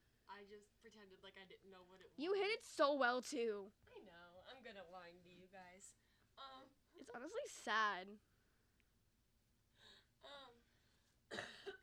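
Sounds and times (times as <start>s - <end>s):
speech: 0.4s - 8.3s, 9.8s - 10.6s
person coughing harshly with blood: 11.3s - 11.8s.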